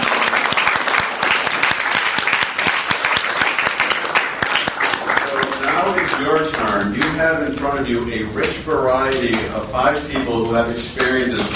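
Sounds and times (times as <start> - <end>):
room full of people applauding: 0.0 - 7.5
speech: 7.7 - 11.5.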